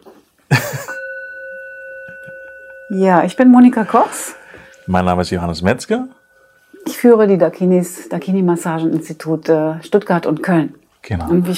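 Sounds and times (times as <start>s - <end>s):
gong struck and ringing: 0.6s - 8.9s
speech: 2.9s - 6.2s, 7.0s - 11.5s.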